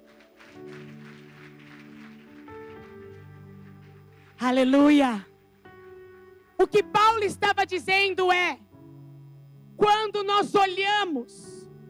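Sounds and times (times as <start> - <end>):
crowd applauding: 0.0 - 4.5
speech: 4.4 - 5.3, 6.7 - 8.6, 9.8 - 11.5.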